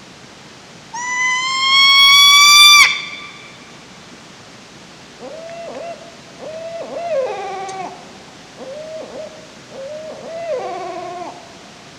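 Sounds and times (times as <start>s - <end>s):
Barred Owl hooting: 1.0s - 3.7s, 5.2s - 11.6s.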